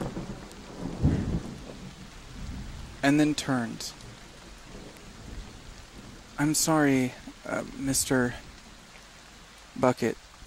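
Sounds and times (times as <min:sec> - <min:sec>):
low roll of thunder: 0:00.0 - 0:06.4
steady rain: 0:00.0 - 0:10.4
speech: 0:03.0 - 0:04.0, 0:06.4 - 0:08.4, 0:09.8 - 0:10.2.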